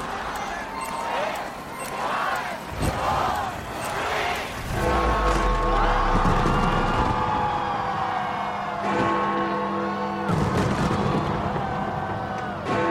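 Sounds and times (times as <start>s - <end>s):
large outdoor New Year crowd cheering and whooping: 0.2s - 12.8s.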